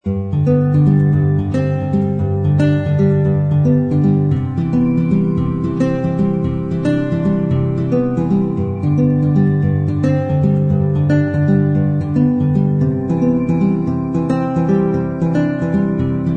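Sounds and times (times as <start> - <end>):
acoustic guitar in a sentimental song: 0.0 - 16.3.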